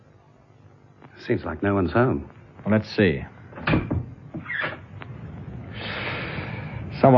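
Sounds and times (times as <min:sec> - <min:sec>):
faint hiss of room noise: 0:00.0 - 0:07.1
speech: 0:01.2 - 0:03.4
home door creaking open: 0:03.5 - 0:05.2.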